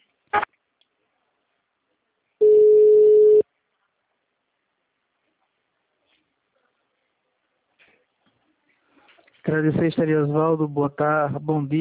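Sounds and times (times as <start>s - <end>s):
call transfer tone on a telephone line: 2.4s - 3.4s
speech: 9.5s - 11.8s.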